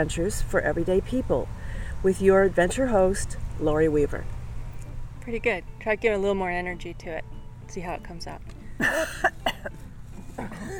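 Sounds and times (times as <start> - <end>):
speech: 0.0 - 4.4, 5.3 - 9.4
person clearing throat: 8.8 - 9.7, 10.4 - 10.7
person coughing with a soft rasp: 8.8 - 9.7, 10.4 - 10.7.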